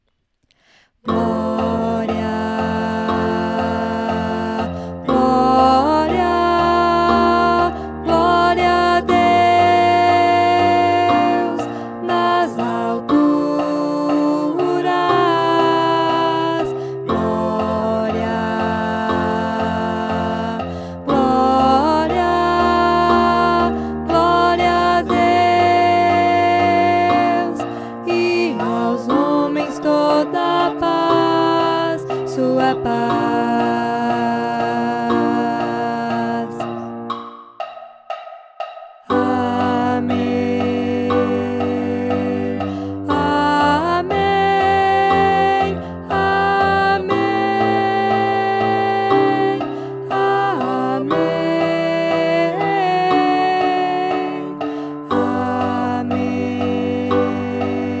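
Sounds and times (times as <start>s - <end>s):
contra alto playing: 1.1s - 57.9s.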